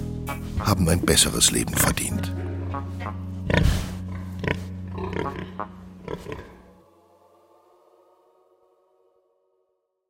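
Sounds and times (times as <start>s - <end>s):
speech: 0.6s - 3.8s
pigs grunting: 2.7s - 6.8s.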